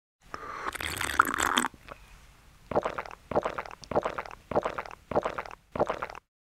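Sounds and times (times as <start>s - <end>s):
person gulping water while drinking: 0.7s - 1.8s, 2.7s - 6.2s.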